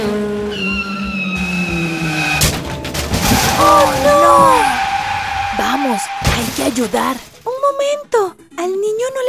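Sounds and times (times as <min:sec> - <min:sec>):
car tires skidding: 0:00.0 - 0:07.4
debris clattering: 0:02.4 - 0:07.5
speech: 0:06.8 - 0:09.2.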